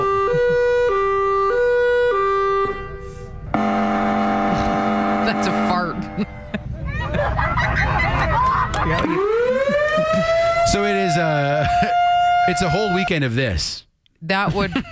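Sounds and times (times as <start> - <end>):
loud stepped two-tone electronic siren: 0.0 - 6.6, 9.0 - 13.1
overlapping rising siren wails: 0.0 - 13.1
laughter: 5.9 - 10.6, 11.4 - 12.1, 14.4 - 14.9
speech: 12.5 - 14.9.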